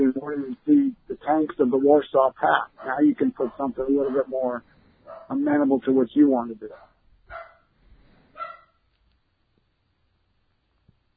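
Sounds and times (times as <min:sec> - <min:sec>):
faint noise: 0:00.0 - 0:11.1
speech: 0:00.1 - 0:07.4
dog barking: 0:00.2 - 0:00.7, 0:02.6 - 0:05.5, 0:06.7 - 0:07.7, 0:08.4 - 0:08.7.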